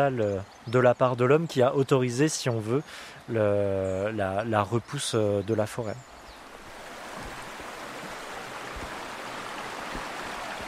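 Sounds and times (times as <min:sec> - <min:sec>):
speech: 0:00.0 - 0:06.1
river Cure rushing under a bridge: 0:06.6 - 0:10.6.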